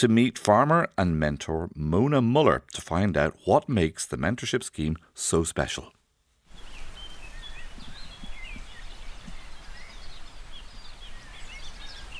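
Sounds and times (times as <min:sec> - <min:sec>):
speech: 0:00.0 - 0:06.0
steady low noise: 0:00.0 - 0:12.1
several birds chirping and trilling outdoors: 0:06.5 - 0:12.1.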